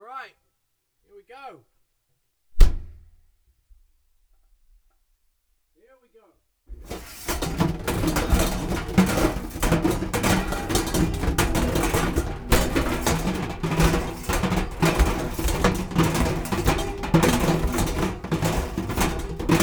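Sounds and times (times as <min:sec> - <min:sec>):
dryer running: 0:06.7 - 0:19.6.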